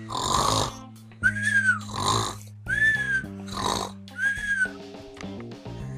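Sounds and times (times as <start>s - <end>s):
loud rhythmic snoring: 0.0s - 0.9s, 1.5s - 4.1s
soft music: 0.0s - 5.9s.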